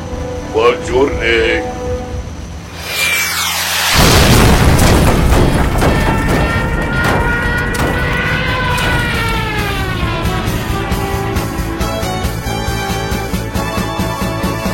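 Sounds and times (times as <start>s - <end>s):
sustained roaring rumble with whining jet engine tones: 0.0s - 14.6s
speech: 0.6s - 1.8s
plane's jet engine exploding after being hit: 2.8s - 12.8s.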